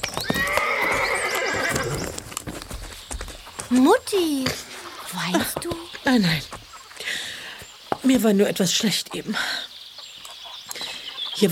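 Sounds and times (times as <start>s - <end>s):
horses with riders clip-clopping hooves: 0.0s - 11.5s
horse neighing: 0.2s - 2.2s
speech: 3.7s - 4.6s, 5.2s - 6.6s, 8.1s - 9.6s.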